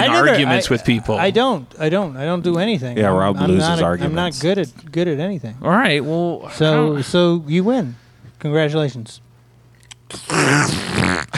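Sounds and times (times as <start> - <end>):
speech: 0.0 - 9.2, 10.1 - 11.3
loud drawn-out raspy fart: 10.1 - 11.3.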